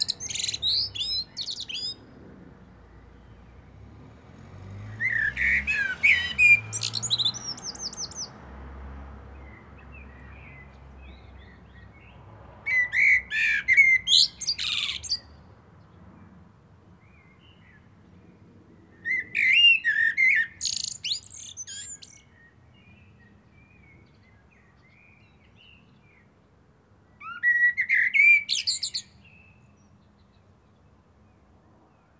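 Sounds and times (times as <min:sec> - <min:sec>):
common blackbird Turdus merula singing: 0:00.0 - 0:02.2, 0:04.7 - 0:08.4, 0:09.4 - 0:15.5, 0:18.9 - 0:26.3, 0:27.1 - 0:30.9.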